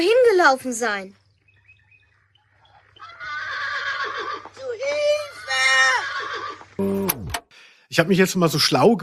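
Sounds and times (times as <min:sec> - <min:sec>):
speech: 0:00.0 - 0:01.2, 0:06.8 - 0:07.1, 0:07.9 - 0:09.0
pony whinnying: 0:02.8 - 0:07.3.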